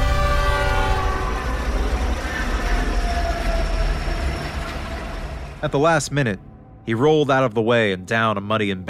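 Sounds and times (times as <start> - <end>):
approaching train's loud sustained whistle: 0.0 - 5.5
heavy rumble and rattle of rolling train on tracks: 0.0 - 6.9
speech: 5.6 - 8.8.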